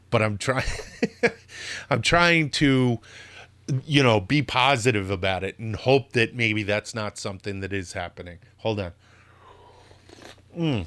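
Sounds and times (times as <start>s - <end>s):
speech: 0.1s - 9.1s, 10.2s - 10.8s
sip of coffee slurping: 9.7s - 10.8s.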